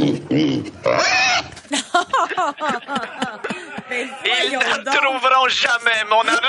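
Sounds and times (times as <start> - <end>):
pig grunting and squealing: 0.0 - 1.6
speech: 0.2 - 1.1, 4.0 - 6.4
laughter: 1.6 - 6.4.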